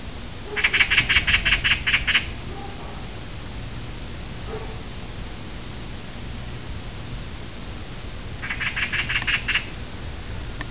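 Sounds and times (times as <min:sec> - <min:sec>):
low hum: 0:00.0 - 0:10.6
magpie chattering call with harsh rapid rattling notes: 0:00.6 - 0:02.4, 0:08.4 - 0:09.7.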